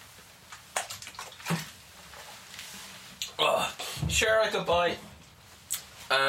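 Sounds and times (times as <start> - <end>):
tap water sloshing in a glass while being drunk: 0.5 - 2.6
speech: 4.2 - 5.1.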